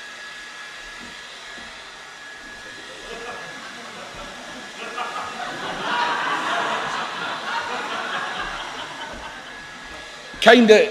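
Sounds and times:
hairdryer blowing on a bunch of leaves: 0.0 - 10.8
faint chuckles: 2.7 - 10.2
speech: 10.4 - 10.8.

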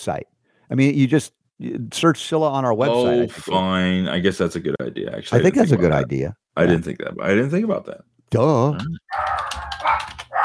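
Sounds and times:
speech: 0.0 - 9.4
dogs barking: 9.1 - 10.4.

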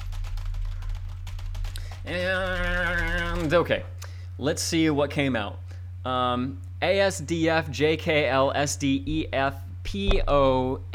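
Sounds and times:
computer keyboard keys mashed randomly: 0.0 - 3.6
speech: 2.0 - 2.8, 3.4 - 10.9
steady low hum: 8.3 - 10.9.

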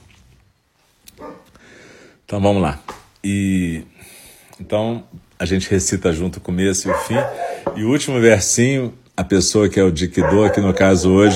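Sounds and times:
speech: 2.3 - 11.3
dog yelping and whimpering excitedly: 6.9 - 7.7, 10.2 - 11.3.

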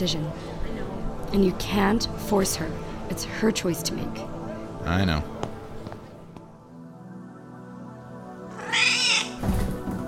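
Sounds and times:
speech: 0.0 - 0.5, 1.3 - 5.4
cat meowing: 8.5 - 9.4.

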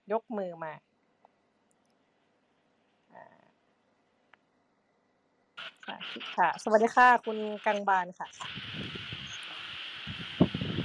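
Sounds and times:
speech: 0.1 - 0.9, 5.9 - 9.0
electric fan blowing into microphone: 8.4 - 10.8.

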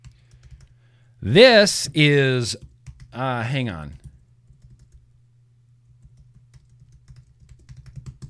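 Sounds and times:
rapid irregular computer keyboard clacking: 0.0 - 0.7, 2.6 - 3.1, 4.5 - 5.0, 6.0 - 8.2
speech: 1.2 - 4.0.

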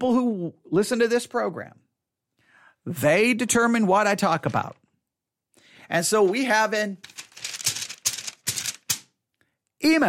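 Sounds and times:
speech: 0.0 - 1.9, 2.8 - 4.8, 5.9 - 7.3, 9.8 - 10.0
sheet of paper rustled as a sound effect: 6.2 - 9.1.

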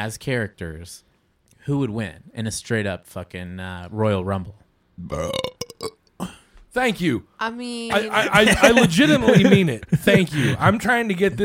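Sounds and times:
speech: 0.0 - 11.4
loud rumbling croaky burp: 5.0 - 6.5
laughter: 7.9 - 10.9.

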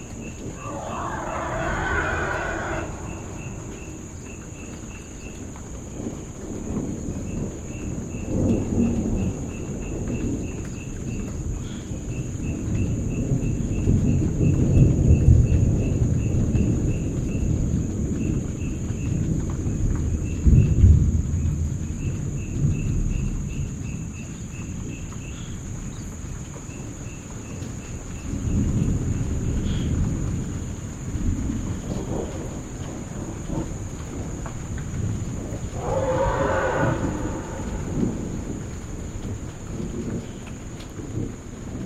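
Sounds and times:
steady high insect whine: 0.0 - 17.6, 27.8 - 41.8
thunder rumbling through a clearing at Langoue Bai: 0.0 - 25.0, 27.6 - 41.8
elephant calls echoing in a clearing: 0.5 - 4.3, 35.6 - 38.8.

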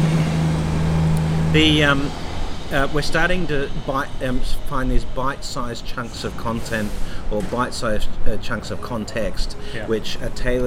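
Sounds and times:
brief higher whine: 0.0 - 5.0
truck idling or rolling by with low engine drone: 0.0 - 10.6
speech: 1.5 - 10.6.

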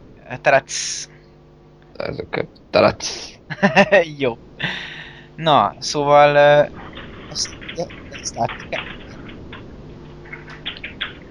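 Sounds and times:
speech: 0.3 - 1.1, 2.0 - 9.0
laughter: 2.0 - 5.3
loud keyboard typing: 6.8 - 9.4, 10.2 - 11.3.

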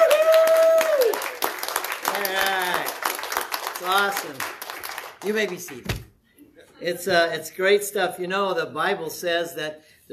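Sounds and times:
whoops and cheering voices: 0.0 - 1.5
audience applause: 0.0 - 5.8
speech: 3.8 - 4.6, 5.2 - 6.0, 6.8 - 10.1.

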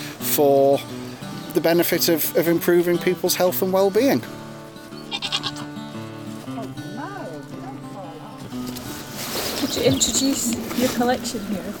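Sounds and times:
speech: 0.4 - 4.4, 9.8 - 11.7
pygmy goats bleating on a social croft in Scotland: 4.9 - 6.2.

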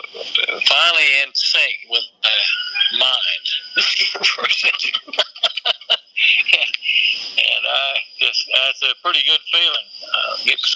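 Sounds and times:
speech: 0.6 - 5.2, 8.6 - 10.7
laughter: 2.2 - 8.7
rooster crowing: 2.4 - 3.7.

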